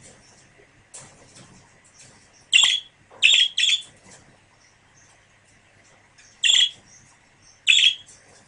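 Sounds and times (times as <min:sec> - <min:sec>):
pair of budgerigars calling: 0:02.5 - 0:03.8, 0:06.4 - 0:06.8, 0:07.6 - 0:08.0.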